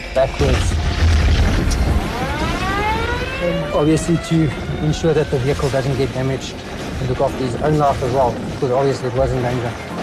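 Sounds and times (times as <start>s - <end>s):
rumbling background: 0.0s - 10.0s
tanker truck explosion: 0.0s - 10.0s
speech: 0.2s - 0.8s, 3.4s - 9.9s
wavering high-pitched tones: 1.8s - 6.1s.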